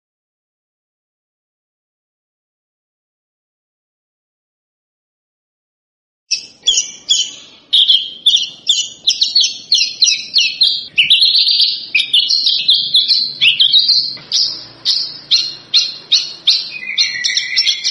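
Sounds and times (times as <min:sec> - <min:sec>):
Javan bush lark song from lure recording: 0:06.3 - 0:17.8.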